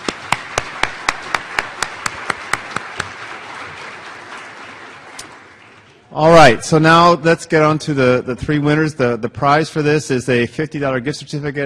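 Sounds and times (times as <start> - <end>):
audience applauding participating schools: 0.0 - 6.6
softer continuous applause: 0.0 - 6.8
speech: 6.2 - 11.6.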